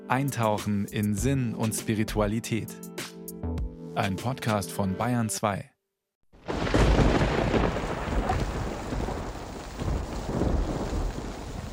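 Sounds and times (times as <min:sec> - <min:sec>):
speech: 0:00.1 - 0:03.2, 0:04.0 - 0:05.7
deep sustained rumble of thunder over the countryside: 0:06.4 - 0:11.7
steady dense rainfall over the countryside: 0:06.4 - 0:11.7.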